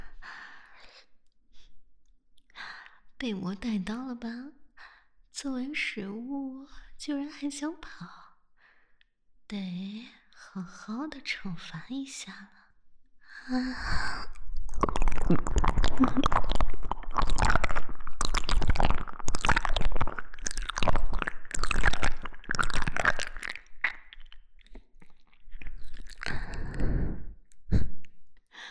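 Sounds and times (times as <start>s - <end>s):
speech: 3.2s - 4.6s, 5.4s - 8.2s, 9.5s - 12.6s, 13.4s - 15.4s, 16.0s - 16.5s
wet chewing and biting into flesh: 14.4s - 26.9s.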